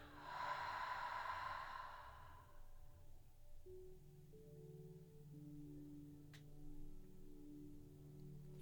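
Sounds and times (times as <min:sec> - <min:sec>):
deep exhale through the mouth during a guided breathing exercise: 0:00.0 - 0:02.7
soft steady musical drone: 0:00.0 - 0:08.6.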